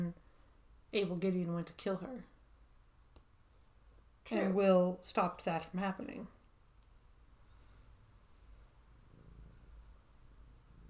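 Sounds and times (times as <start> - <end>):
speech: 0.9 - 2.3, 4.2 - 6.4
cat purring: 8.9 - 10.8.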